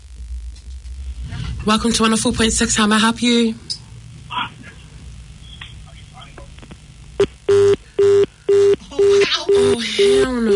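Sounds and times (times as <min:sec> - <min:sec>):
speech: 0:01.6 - 0:03.7
telephone line tone on an incoming call to a radio show: 0:07.5 - 0:10.5.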